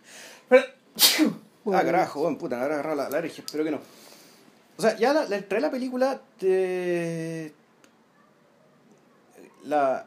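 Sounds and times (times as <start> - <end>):
speech: 0.5 - 4.0, 4.8 - 7.6, 9.6 - 10.0
person sneezing: 1.0 - 1.5.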